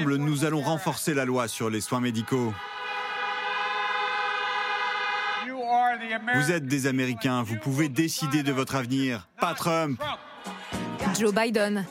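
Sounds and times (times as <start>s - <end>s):
speech: 0.0s - 2.8s, 6.0s - 10.2s, 11.1s - 11.8s
car horn blaring in one unbroken blast: 2.6s - 5.6s.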